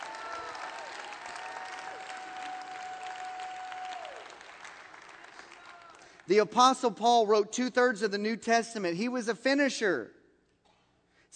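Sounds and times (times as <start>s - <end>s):
church audience clapping and cheering: 0.0s - 6.5s
speech: 6.3s - 10.2s.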